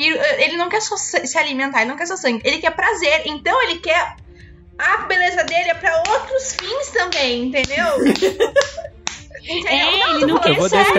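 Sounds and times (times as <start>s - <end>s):
speech: 0.0s - 4.2s, 4.8s - 10.9s
conversational speech: 7.7s - 8.7s, 9.5s - 10.9s
laugh: 7.8s - 10.9s
woman striking one hand against the other: 7.9s - 9.2s.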